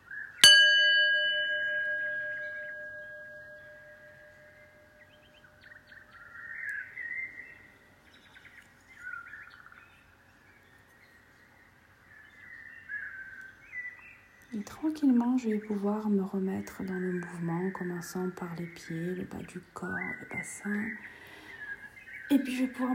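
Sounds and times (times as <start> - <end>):
birds chirping and twittering: 0.0 - 22.9
gong strike ringing with sustained metallic hum: 0.4 - 5.2
speech: 14.6 - 21.2, 22.3 - 22.9.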